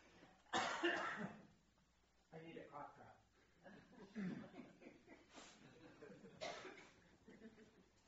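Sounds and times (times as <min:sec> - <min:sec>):
person coughing: 0:00.5 - 0:01.4, 0:06.4 - 0:07.0.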